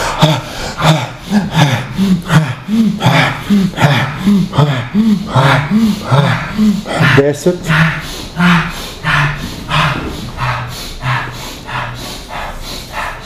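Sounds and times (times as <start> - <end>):
bhastrika rapid forceful bellows breathing: 0.0 - 13.2
speech: 5.2 - 8.6.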